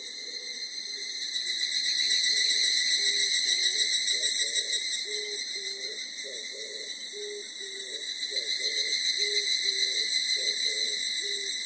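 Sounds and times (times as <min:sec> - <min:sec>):
evening cicada call: 0:00.0 - 0:11.6.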